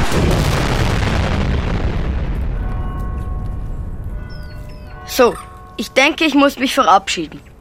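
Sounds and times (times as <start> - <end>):
loud thunderous crash of capsule landing: 0.0 - 4.5
speech: 5.2 - 7.5.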